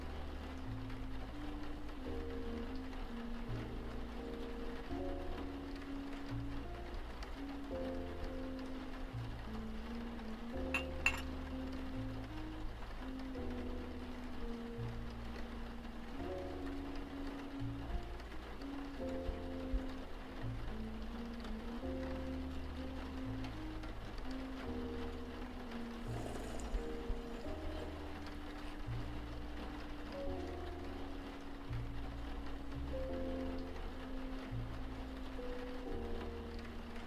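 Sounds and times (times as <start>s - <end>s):
gentle rain: 0.0s - 37.0s
soft jazz with walking bass and mellow chords: 0.0s - 37.0s.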